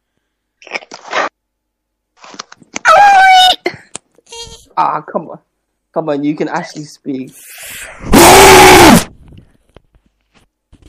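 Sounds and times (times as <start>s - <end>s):
loud human scream: 2.8s - 3.6s, 8.0s - 9.1s
speech: 4.8s - 8.4s.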